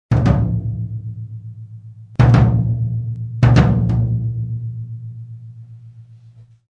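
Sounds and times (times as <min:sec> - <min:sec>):
16 floor tom drum: 0:00.1 - 0:05.6.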